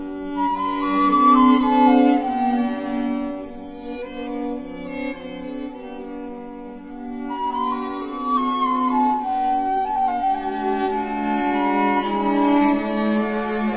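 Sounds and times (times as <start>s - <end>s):
flute quartet playing an Allegro: 0.3s - 3.6s, 7.1s - 13.7s.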